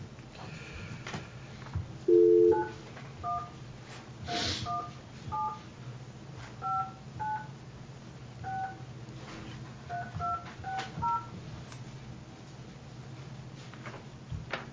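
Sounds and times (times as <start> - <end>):
low steady hum: 0.0 - 14.6
touch-tone beeps of a phone number being dialed: 2.1 - 3.5.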